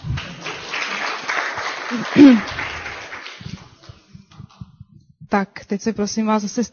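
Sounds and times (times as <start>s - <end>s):
crowd applauding: 0.0s - 4.4s
speech: 1.9s - 2.6s, 5.3s - 6.7s.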